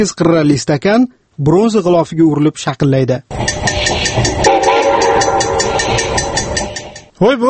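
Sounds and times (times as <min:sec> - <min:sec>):
speech: 0:00.0 - 0:04.3, 0:07.2 - 0:07.4
express train rumble with rhythmic clatter heard from a sleeping-car compartment: 0:03.3 - 0:07.2
sustained horn-like tone: 0:03.8 - 0:07.1.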